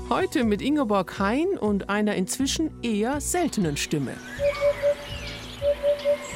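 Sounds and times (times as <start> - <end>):
speech: 0.1 - 4.7
Eurasian hoopoe calling: 4.2 - 6.3.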